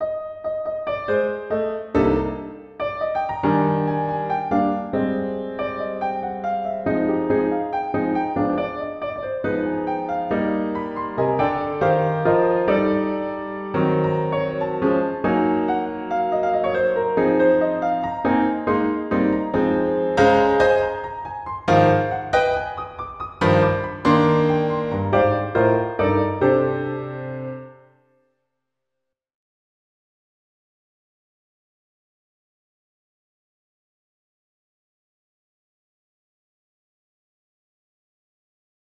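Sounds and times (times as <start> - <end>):
latin etude on piano: 0.0 - 28.1.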